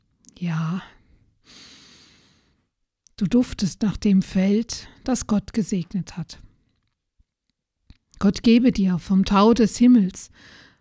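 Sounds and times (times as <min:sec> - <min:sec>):
speech: 0:00.4 - 0:01.6, 0:03.2 - 0:06.5, 0:08.2 - 0:10.7
long deep inhale through the nose: 0:01.4 - 0:02.6.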